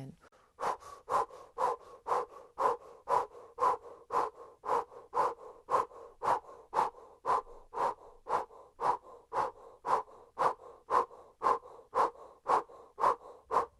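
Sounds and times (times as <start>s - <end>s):
breath-of-fire breathing through an O-shaped mouth: 0.2s - 13.7s.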